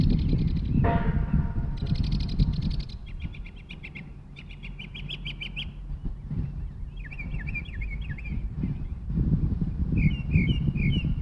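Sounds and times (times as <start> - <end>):
northern mockingbird singing in Maryland: 0.0 - 9.1, 10.0 - 11.1
low-pitched background rumble: 0.0 - 11.1.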